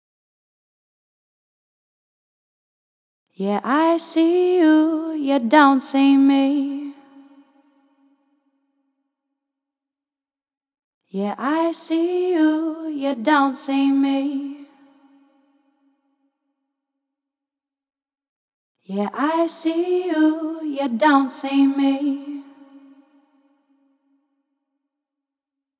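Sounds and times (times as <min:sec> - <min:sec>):
lead vocals: 0:03.4 - 0:07.4, 0:11.1 - 0:15.1, 0:18.9 - 0:23.2.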